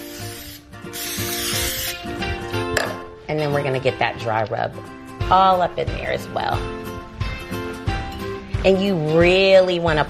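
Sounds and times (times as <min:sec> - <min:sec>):
liquid sprayed onto raw barbecue ribs: 0:00.0 - 0:02.0
speech: 0:03.4 - 0:06.8, 0:08.6 - 0:10.0.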